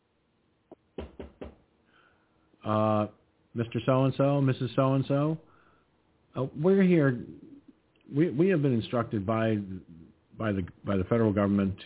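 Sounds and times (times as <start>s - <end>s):
firm knocks on a door: 1.0s - 1.6s
speech: 2.6s - 5.5s, 6.4s - 7.4s, 8.1s - 11.8s.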